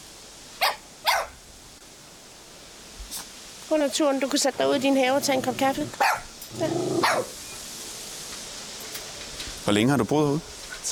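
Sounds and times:
hiss: 0:00.0 - 0:10.9
small Coton de Tulear dog barking: 0:00.6 - 0:01.4, 0:05.9 - 0:06.3, 0:07.0 - 0:07.3
speech: 0:03.7 - 0:07.4, 0:09.7 - 0:10.9.

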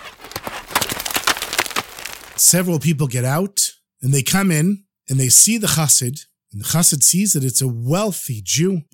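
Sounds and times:
horse hooves clip-clopping on a hard surface: 0:00.0 - 0:02.5
horse-drawn carriage approaching: 0:00.0 - 0:02.5
speech: 0:02.5 - 0:08.9.

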